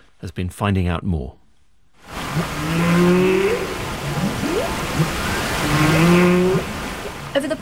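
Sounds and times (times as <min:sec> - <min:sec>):
speech: 0:00.2 - 0:01.4, 0:02.4 - 0:06.2, 0:07.4 - 0:07.6
steady wash of underwater noise: 0:02.0 - 0:07.6
humpback whale moaning calls: 0:02.1 - 0:07.6.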